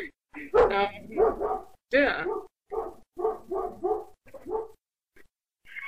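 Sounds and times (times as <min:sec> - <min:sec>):
dogs barking: 0:00.5 - 0:04.8
speech: 0:00.7 - 0:01.0.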